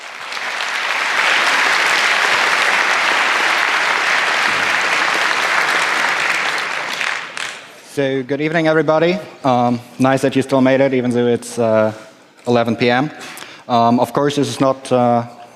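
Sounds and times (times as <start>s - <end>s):
audience applause: 0.0s - 7.8s
speech: 8.0s - 15.4s.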